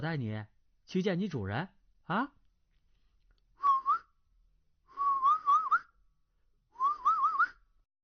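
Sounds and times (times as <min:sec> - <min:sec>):
speech: 0:00.0 - 0:02.4
short warbling mouth whistles to coax an animal: 0:03.6 - 0:04.2, 0:04.9 - 0:06.0, 0:06.8 - 0:07.7.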